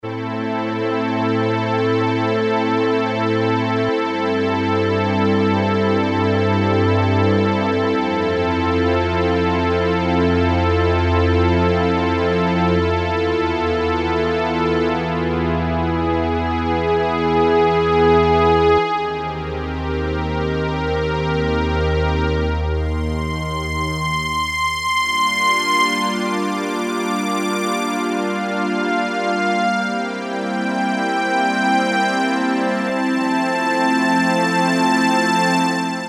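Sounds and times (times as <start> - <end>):
combi-string synthesizer patch on a Roland W-30: 0.1 - 36.0.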